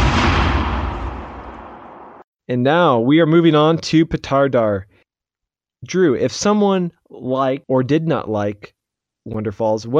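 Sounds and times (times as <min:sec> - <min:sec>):
loud explosion with heavy rumble: 0:00.0 - 0:02.2
speech: 0:02.5 - 0:05.0, 0:05.8 - 0:09.9.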